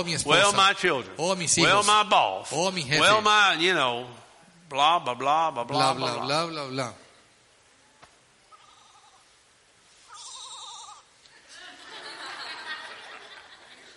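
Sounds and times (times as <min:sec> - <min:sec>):
speech: 0:00.0 - 0:07.0
sheep bleating: 0:10.1 - 0:11.1
laughter: 0:11.4 - 0:13.9.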